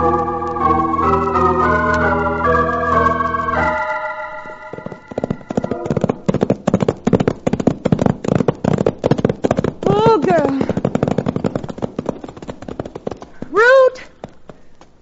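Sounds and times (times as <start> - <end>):
sustained musical chord: 0.0 - 6.2
horse hooves clip-clopping: 0.0 - 15.0.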